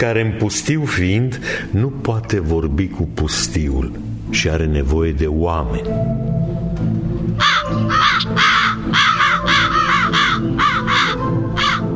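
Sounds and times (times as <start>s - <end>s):
speech: 0.0s - 6.6s
flock of crows cawing as they fly over a field in front of a railway station: 7.4s - 11.9s.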